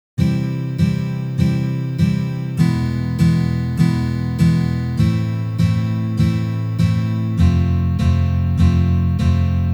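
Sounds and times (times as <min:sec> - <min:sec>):
guitar exercises playing a C major chord: 0:00.2 - 0:09.7.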